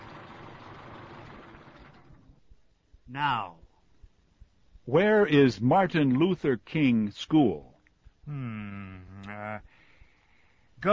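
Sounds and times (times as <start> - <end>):
vehicle engine idling and shutting off: 0.0 - 2.4
speech: 3.1 - 3.6, 4.8 - 7.7, 8.3 - 9.7.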